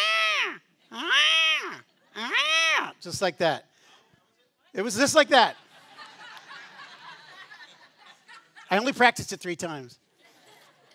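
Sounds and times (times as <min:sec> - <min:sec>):
person imitating a cat's meow with loud drawn-out wails: 0:00.0 - 0:02.9
speech: 0:03.0 - 0:03.7, 0:04.7 - 0:05.6, 0:08.7 - 0:10.0
laughter: 0:04.9 - 0:09.0, 0:10.1 - 0:10.9.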